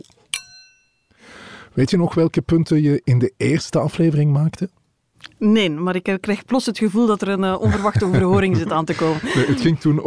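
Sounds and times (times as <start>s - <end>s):
two glasses of sparkling wine clinking in a toast: 0.3s - 1.2s
speech: 1.8s - 10.0s
laughter: 7.6s - 10.0s.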